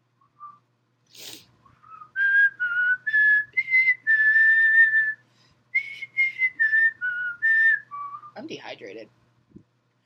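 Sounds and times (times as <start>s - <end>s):
person whistling a short breathy tune: 0.2s - 0.6s, 1.6s - 5.2s, 5.8s - 8.4s
sharp puff of breath: 1.1s - 1.6s
speech: 8.8s - 9.2s.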